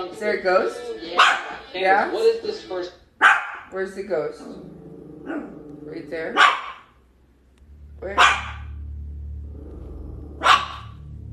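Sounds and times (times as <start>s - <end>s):
speech: 0.0s - 6.7s, 8.0s - 8.5s
low steady hum: 0.0s - 11.3s
dog barking: 1.2s - 1.6s, 3.2s - 3.7s, 6.3s - 7.0s, 8.2s - 8.8s, 10.4s - 11.0s.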